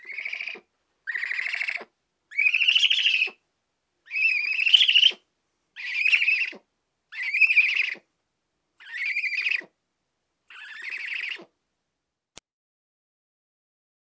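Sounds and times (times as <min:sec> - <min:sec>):
harsh raspy bird calls: 0:00.0 - 0:03.4, 0:04.1 - 0:05.2, 0:05.8 - 0:08.1, 0:08.8 - 0:09.8, 0:10.5 - 0:11.5.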